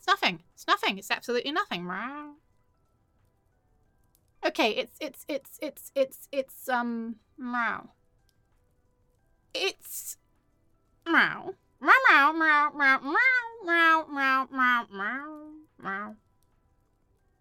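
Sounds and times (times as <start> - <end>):
speech: 0.0 - 2.5, 4.4 - 8.0, 9.5 - 10.2, 11.1 - 16.2
person imitating cat meowing cries: 11.2 - 16.2.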